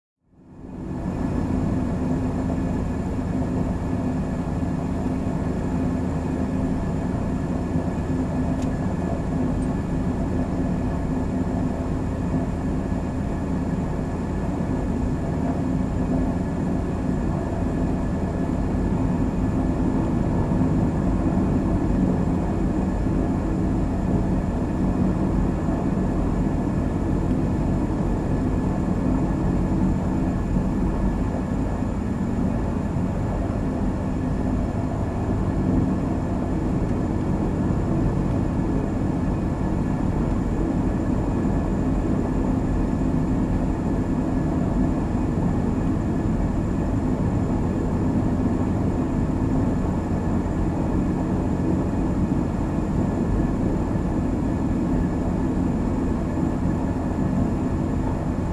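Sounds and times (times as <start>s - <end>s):
airliner cabin ambience: 0.3s - 58.5s.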